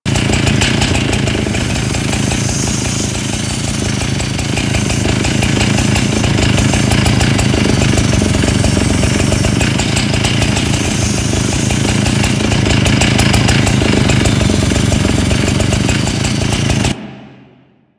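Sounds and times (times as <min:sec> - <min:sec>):
saw idling: 0:00.0 - 0:17.2.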